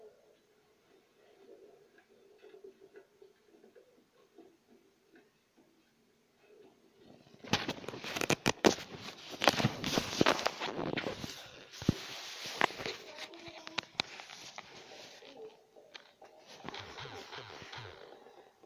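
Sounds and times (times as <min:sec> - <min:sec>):
gritty footsteps walking on rough ground: 0:07.5 - 0:15.0.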